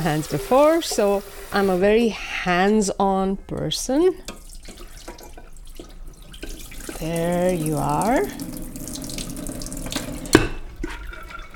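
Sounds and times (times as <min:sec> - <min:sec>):
water running from a tap into a pot: 0:00.0 - 0:02.1, 0:04.3 - 0:11.5
speech: 0:00.0 - 0:04.4, 0:07.0 - 0:08.6.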